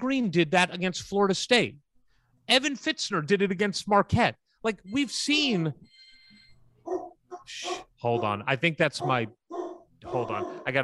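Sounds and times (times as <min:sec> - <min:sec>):
speech: 0:00.0 - 0:01.8, 0:02.5 - 0:06.0, 0:06.9 - 0:09.4, 0:10.0 - 0:10.8
dog barking excitedly: 0:06.8 - 0:10.8.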